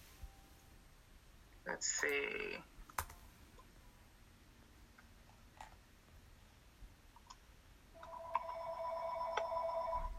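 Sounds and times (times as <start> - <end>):
speech: 1.8 - 2.7
home telephone ringing with electronic warble: 8.0 - 10.1.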